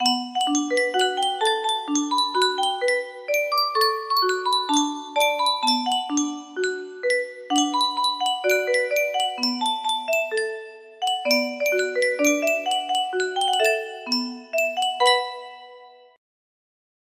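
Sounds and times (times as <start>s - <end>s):
music box melody: 0.0s - 16.2s.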